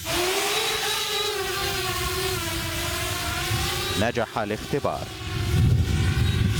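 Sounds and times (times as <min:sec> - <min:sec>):
Ukrainian drone motor whine hovering and flying in a software upgrade test: 0:00.0 - 0:06.5
broad windy rush: 0:01.7 - 0:06.5
speech: 0:04.0 - 0:05.4.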